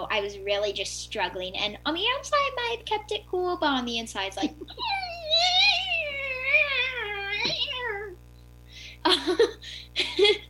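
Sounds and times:
speech: 0.1 - 5.6, 9.0 - 10.4
person laughing: 4.4 - 8.0, 8.8 - 10.4
person yowling imitating a cat in pain: 4.8 - 8.2.

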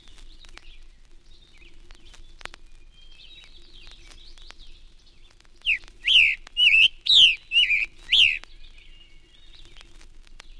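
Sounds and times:
Scarlet Tanager singing raspy phrases: 5.7 - 8.4.

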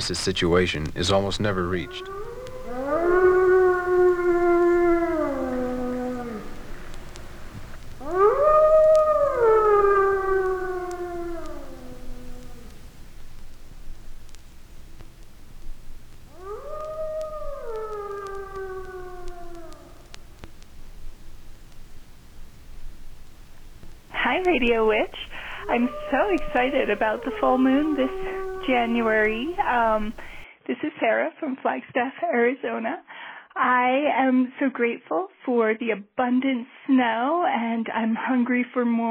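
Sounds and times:
speech: 0.0 - 3.1, 26.5 - 30.2, 31.0 - 39.1
wolves howling: 0.0 - 30.4
faint hiss: 0.0 - 39.0.

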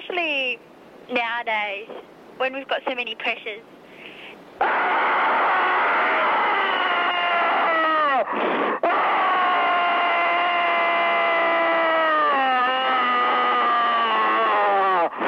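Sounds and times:
speech: 0.2 - 3.8, 4.6 - 5.3
person screaming: 4.6 - 15.1.

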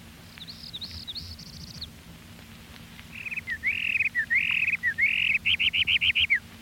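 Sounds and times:
faint low hum: 0.0 - 6.6
parula warbler singing: 0.3 - 1.9, 3.1 - 6.4.

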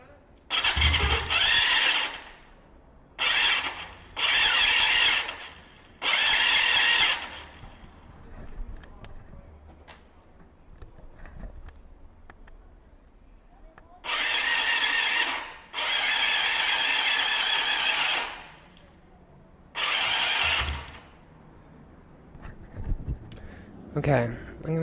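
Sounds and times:
motorcycle electric starter cranking the engine without starting: 0.5 - 2.4, 3.2 - 7.7, 14.0 - 18.6, 19.8 - 21.2
speech: 24.0 - 24.8.

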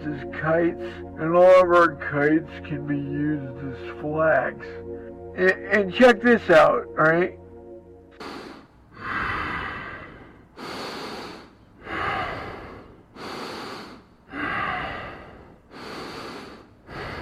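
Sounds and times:
speech: 0.4 - 4.8, 5.4 - 7.4
slow heavy breathing of a sleeping person: 8.2 - 17.2.

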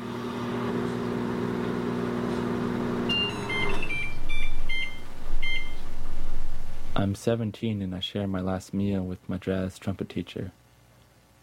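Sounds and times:
steady electric hum: 0.0 - 11.4
microwave oven high electronic done beeps: 3.0 - 7.0
speech: 7.0 - 10.6.

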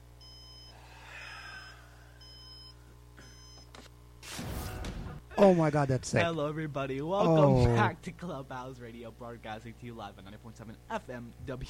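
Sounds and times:
alarm clock beeping high electronic tones: 1.6 - 3.7
speech: 5.4 - 11.6.

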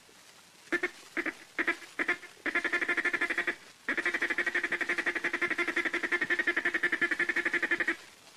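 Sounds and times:
duck call blown to make a feed call: 0.7 - 8.0.

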